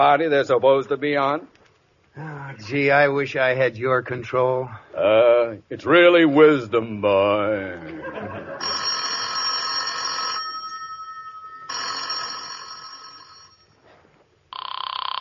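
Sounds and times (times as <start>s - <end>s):
speech: 0.0s - 1.6s, 2.2s - 8.4s
faint noise: 0.0s - 15.2s
laughter: 7.8s - 8.8s
telephone bell ringing: 8.4s - 13.8s, 14.5s - 15.2s.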